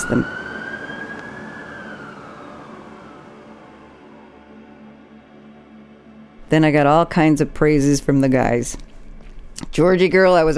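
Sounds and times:
loud rush of traffic: 0.0s - 4.3s
police car siren wailing: 0.0s - 6.3s
speech: 0.1s - 0.4s, 6.5s - 8.9s, 9.6s - 10.5s.

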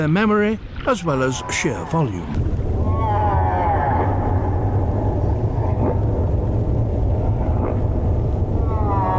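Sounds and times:
speech: 0.0s - 2.6s
male humpback whale song underwater in the open ocean: 1.3s - 6.3s, 7.3s - 9.1s
constant low underwater rumble: 2.2s - 9.1s.

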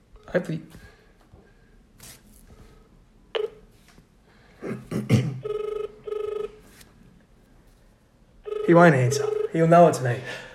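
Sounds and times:
speech: 0.3s - 0.9s, 8.7s - 10.5s
buzzy ringback tone on an outgoing phone call: 3.4s - 3.6s, 5.4s - 6.7s, 8.4s - 10.0s.

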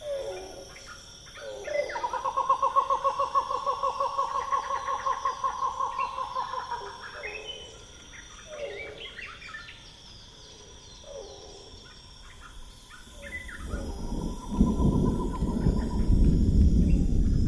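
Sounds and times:
shrill insect chorus in a rainforest: 0.0s - 17.4s
deep loud rumbling: 13.6s - 17.4s.

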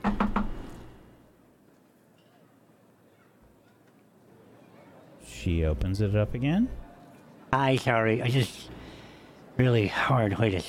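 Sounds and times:
knocking on a wooden door: 0.0s - 0.6s
speech: 5.4s - 6.8s, 7.5s - 8.8s, 9.6s - 10.6s.

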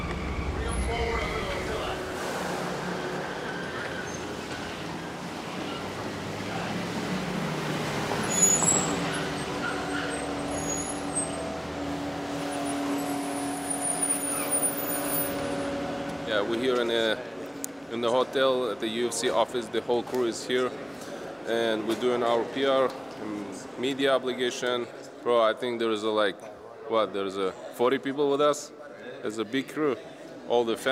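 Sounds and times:
several cars pulling up with engines and tyre noise: 0.0s - 23.2s
speech: 16.4s - 17.2s, 17.9s - 20.9s, 21.5s - 30.9s.

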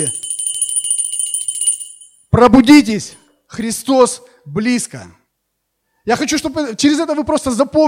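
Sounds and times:
speech: 0.0s - 0.2s, 2.3s - 5.2s, 6.0s - 7.8s
small hand bell ringing: 0.0s - 2.3s.

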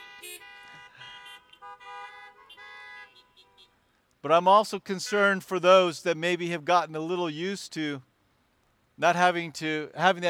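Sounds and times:
car horn honking in approval during a church sermon: 0.0s - 3.8s
speech: 4.2s - 8.1s, 9.0s - 10.2s.

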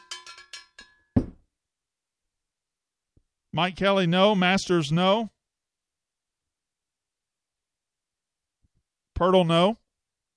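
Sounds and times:
cowbell ringing like a dinner bell: 0.0s - 1.2s
faint thud: 1.2s - 1.4s
speech: 3.6s - 5.4s, 9.2s - 9.8s.

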